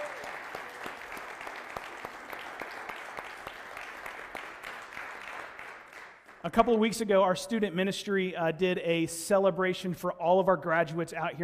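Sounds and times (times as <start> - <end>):
congregation applauding: 0.0 - 6.5
speech: 6.4 - 11.4.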